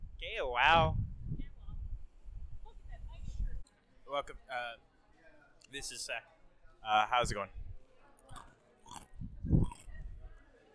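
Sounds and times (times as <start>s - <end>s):
speech: 0.2s - 1.0s, 4.1s - 4.9s, 5.7s - 7.6s
chewing of food by a microphone: 8.2s - 10.0s.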